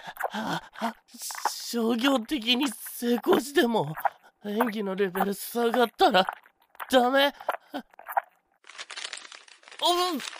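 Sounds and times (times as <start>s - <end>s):
speech: 0.1s - 7.9s, 9.8s - 10.3s
paper bag crinkling as put over head: 8.6s - 10.3s.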